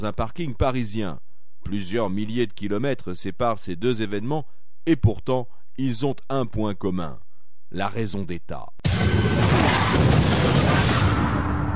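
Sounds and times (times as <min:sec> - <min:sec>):
speech: 0:00.0 - 0:10.7
arms-laden plane exploding: 0:08.8 - 0:11.7.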